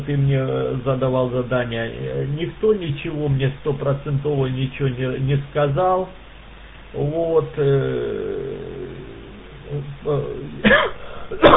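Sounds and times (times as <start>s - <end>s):
speech: 0.0s - 6.2s, 6.9s - 8.7s, 9.7s - 11.5s
person giving harsh chesty coughs: 10.5s - 11.5s.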